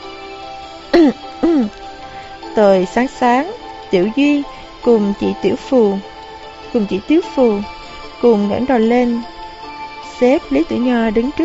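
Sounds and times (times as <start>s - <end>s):
person giving dry throaty coughs at an office desk: 1.0s - 1.8s
speech: 1.0s - 1.8s, 2.6s - 6.1s, 6.7s - 9.3s, 10.2s - 11.4s.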